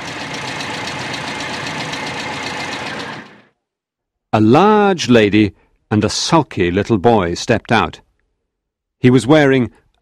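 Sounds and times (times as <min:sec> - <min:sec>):
motor car driving up and idling: 0:00.0 - 0:03.5
speech: 0:04.4 - 0:08.0, 0:09.0 - 0:10.0.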